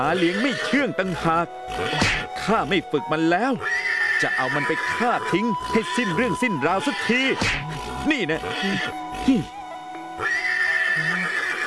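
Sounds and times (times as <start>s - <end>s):
unruly wild horse whinnying: 0.0s - 0.8s, 1.7s - 2.3s, 3.6s - 9.5s, 10.2s - 11.6s
speech: 0.0s - 9.6s.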